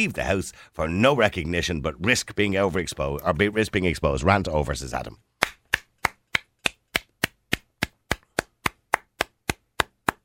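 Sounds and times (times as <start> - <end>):
speech: 0.0 - 5.3
single person clapping: 5.4 - 10.2.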